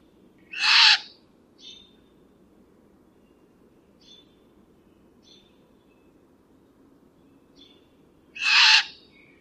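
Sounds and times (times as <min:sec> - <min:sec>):
great horned owl screeching: 0:00.5 - 0:01.1, 0:08.4 - 0:09.0.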